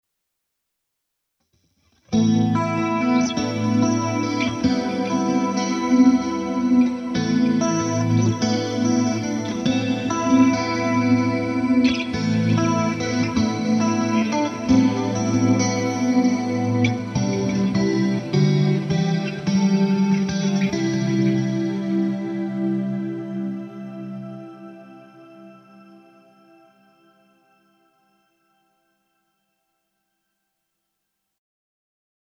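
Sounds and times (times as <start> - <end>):
ambient shimmer tone through Fender Twin amplifier: 2.1 - 29.1.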